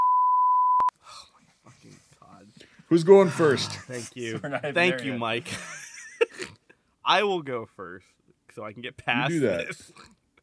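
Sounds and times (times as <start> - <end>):
loud steady censor bleep: 0.0 - 0.9
speech: 2.9 - 5.8, 7.1 - 10.1
laughter: 3.2 - 6.6.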